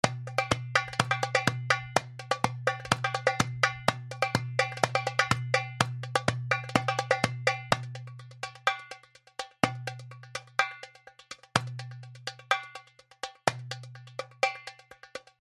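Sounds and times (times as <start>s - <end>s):
darbuka drumming: 0.0s - 15.3s.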